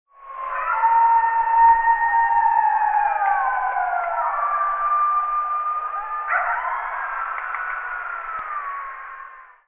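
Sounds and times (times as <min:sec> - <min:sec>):
wolves howling: 0:00.2 - 0:09.6
jackals calling: 0:02.0 - 0:09.4
dogs barking: 0:06.2 - 0:08.3.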